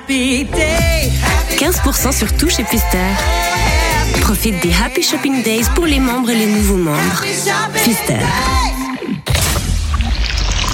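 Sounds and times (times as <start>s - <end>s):
speech: 0.1s - 9.2s
sparkling soft drink being poured: 9.8s - 10.7s.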